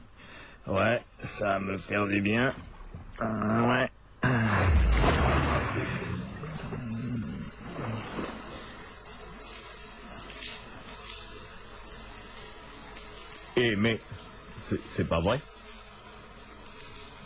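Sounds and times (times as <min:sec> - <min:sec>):
speech: 0:00.6 - 0:06.1, 0:13.6 - 0:15.5
water pouring from a shower: 0:04.9 - 0:17.2.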